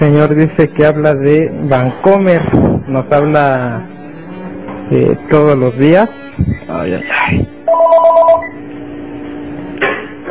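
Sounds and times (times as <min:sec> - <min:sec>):
speech: 0:00.0 - 0:04.0, 0:04.9 - 0:08.5
telephone warbling electronic ring from a repeated incoming call: 0:07.6 - 0:08.7.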